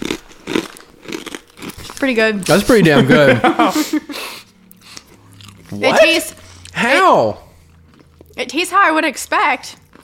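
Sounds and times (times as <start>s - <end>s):
wet crunchy chewing of food: 0.0s - 2.6s, 4.7s - 6.8s, 7.5s - 8.5s, 9.7s - 10.0s
speech: 2.0s - 4.4s, 5.7s - 7.4s, 8.4s - 9.8s
laughter: 2.8s - 4.2s.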